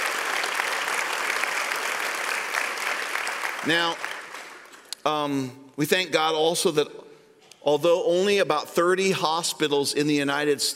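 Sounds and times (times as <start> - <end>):
large audience applauding and cheering: 0.0 - 4.9
speech: 3.6 - 4.1, 5.0 - 7.0, 7.6 - 10.7.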